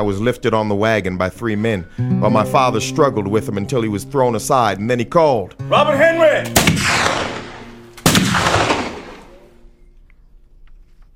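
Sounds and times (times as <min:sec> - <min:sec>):
speech: 0:00.0 - 0:07.1
gunshots fired at a wagon: 0:06.5 - 0:09.5.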